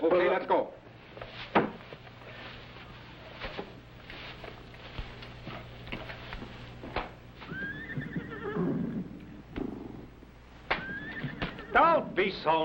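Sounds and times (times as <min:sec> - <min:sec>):
speech: 0:00.0 - 0:01.6, 0:12.4 - 0:12.6
horse hooves shuffling and thumping: 0:01.0 - 0:11.9
horses whinnying and neighing: 0:07.4 - 0:12.0.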